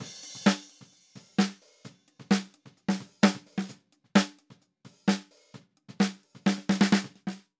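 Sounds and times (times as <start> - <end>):
snare drum: 0.0 - 7.5.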